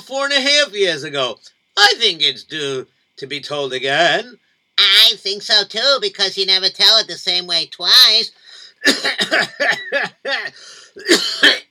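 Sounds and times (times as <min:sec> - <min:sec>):
speech: 0:00.1 - 0:11.6
rough raspy throat clearing and coughing: 0:08.8 - 0:11.6.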